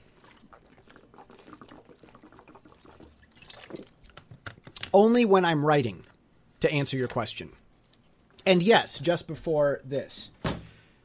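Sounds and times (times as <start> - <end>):
water pouring: 0.0 - 4.2
speech: 4.9 - 7.6, 8.5 - 10.4.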